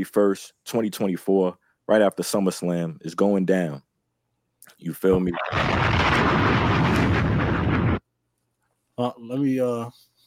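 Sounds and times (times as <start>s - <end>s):
speech: 0.0s - 3.9s, 4.7s - 7.3s, 9.0s - 10.1s
explosion sound effect played as a drop: 5.2s - 8.0s.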